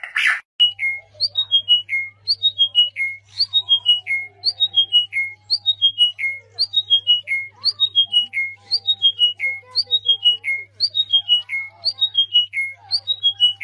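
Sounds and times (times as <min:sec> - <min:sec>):
bird song: 0:00.6 - 0:13.6.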